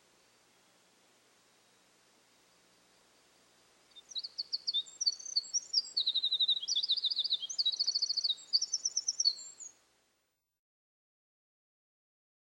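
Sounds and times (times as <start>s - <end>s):
Eurasian wren singing sharp high notes and rattling trills: 3.9s - 9.8s.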